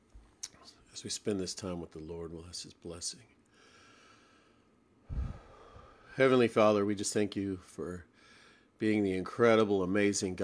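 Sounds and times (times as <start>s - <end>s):
speech: 1.0s - 3.4s, 6.2s - 8.1s, 8.8s - 10.4s
deep inhale and exhale: 3.5s - 6.1s.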